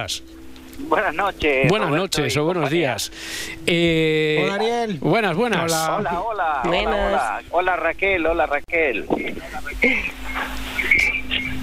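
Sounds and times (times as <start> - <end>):
speech: 0.0 - 10.6
steady electrical hum on a phone line: 0.0 - 11.6
voices from a radio: 4.4 - 11.5.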